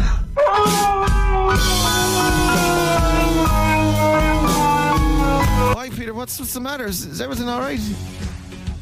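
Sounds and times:
husky howling in a phone voice-note recording: 0:00.4 - 0:05.8
speech: 0:06.3 - 0:08.3.

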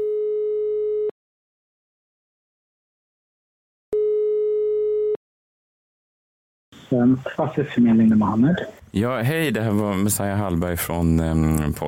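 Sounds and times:
telephone ringback tones: 0:00.0 - 0:01.1, 0:04.0 - 0:05.2
speech: 0:06.9 - 0:11.8.

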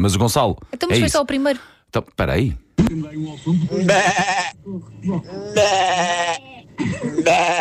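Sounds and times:
speech: 0:00.0 - 0:07.6
radio listener imitating a sheep bleating: 0:03.7 - 0:07.6.

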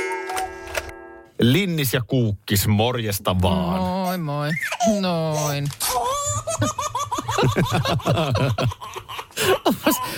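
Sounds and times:
speech: 0:01.4 - 0:06.0, 0:06.6 - 0:10.1
baby laughing and giggling: 0:04.5 - 0:10.1.

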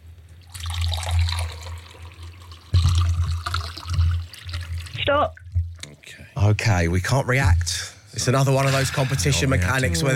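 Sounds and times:
liquid poured into a container during a game challenge: 0:00.4 - 0:05.5
speech: 0:05.2 - 0:05.4, 0:06.4 - 0:10.1.

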